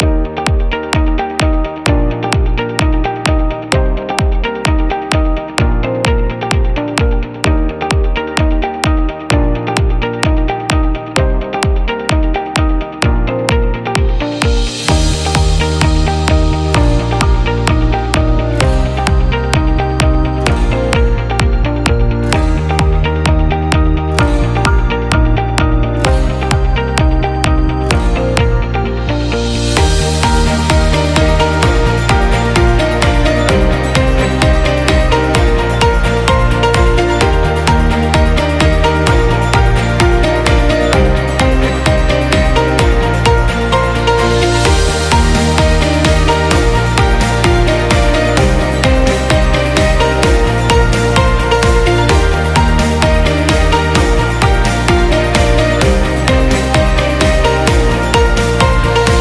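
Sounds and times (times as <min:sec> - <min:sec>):
corporate background music: 0:00.0 - 0:59.1.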